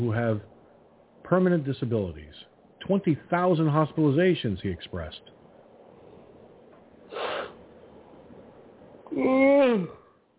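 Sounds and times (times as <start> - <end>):
speech: 0.0 - 0.5, 1.2 - 5.3, 9.1 - 10.0
quiet hissy background: 0.0 - 10.3
short breathy yawn: 9.1 - 10.2.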